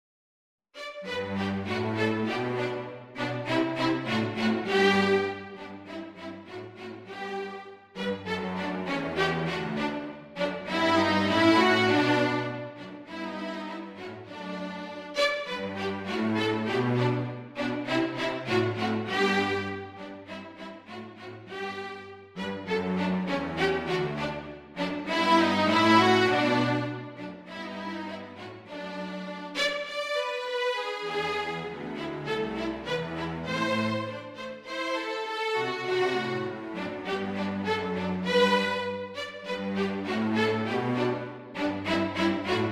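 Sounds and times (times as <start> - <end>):
string trio playing an allegro: 0.8 - 42.7.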